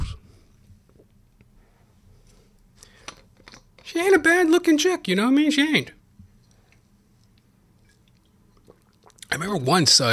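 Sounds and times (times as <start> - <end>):
speech: 3.9 - 6.0, 9.5 - 10.1
person sipping water: 6.5 - 9.3
small wet slurping clicks from someone drinking: 7.2 - 9.3
person gulping: 7.9 - 9.3.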